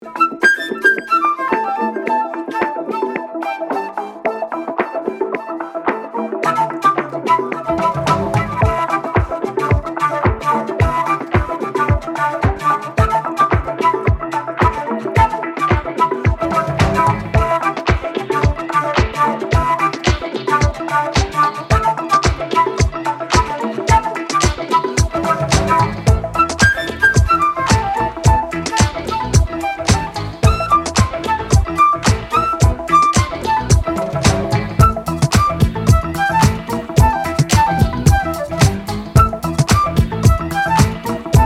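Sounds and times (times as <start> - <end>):
flute mix: 0.0 - 41.4.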